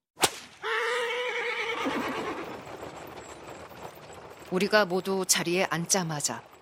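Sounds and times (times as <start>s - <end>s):
coachman's whip crack: 0.2s - 0.6s
horse whinnying: 0.6s - 2.8s
horse-drawn carriage speeding through a foggy street: 0.6s - 6.6s
speech: 4.5s - 6.5s.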